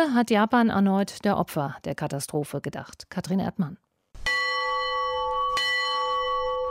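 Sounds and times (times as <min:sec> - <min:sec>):
speech: 0:00.0 - 0:03.8
large memorial bell ringing in Miyagi Japan: 0:04.2 - 0:06.6.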